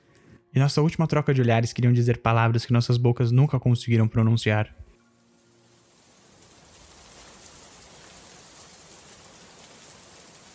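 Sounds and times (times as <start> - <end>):
speech: 0.6 - 4.8
steady rain pouring down: 5.1 - 10.5.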